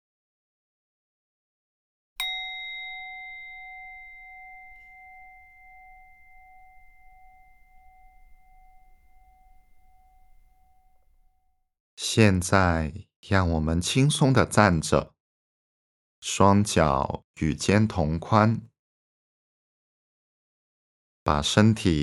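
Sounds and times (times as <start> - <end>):
single bell struck with a clear metallic tone: 2.2 - 11.3
speech: 12.2 - 15.1, 16.2 - 18.7, 21.3 - 22.0.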